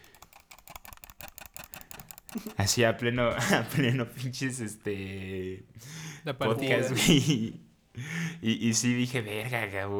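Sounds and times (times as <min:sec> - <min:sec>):
computer keyboard clicks: 0:00.0 - 0:02.6
speech: 0:02.3 - 0:09.9
laughter: 0:06.3 - 0:07.6.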